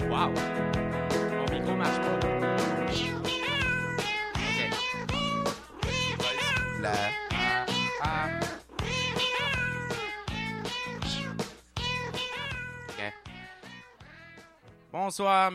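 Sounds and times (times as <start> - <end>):
speech: 0.1 - 1.0, 1.6 - 2.4, 15.1 - 15.5
cat meowing loudly and insistently: 2.9 - 14.6.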